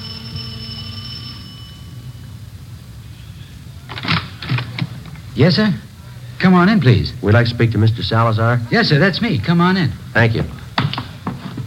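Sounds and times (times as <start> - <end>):
bright electronic doorbell ringing: 0.0 - 2.3
low hum: 0.0 - 11.6
speech: 5.4 - 10.6.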